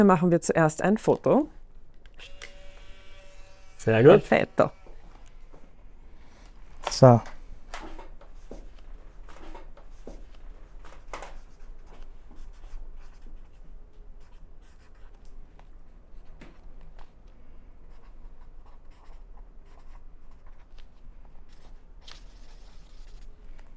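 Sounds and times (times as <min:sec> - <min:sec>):
speech: 0:00.0 - 0:01.6, 0:03.8 - 0:04.8, 0:06.8 - 0:07.3
pen writing an entry in a guestbook: 0:11.3 - 0:13.6, 0:14.2 - 0:15.2, 0:17.9 - 0:20.8, 0:21.5 - 0:23.3.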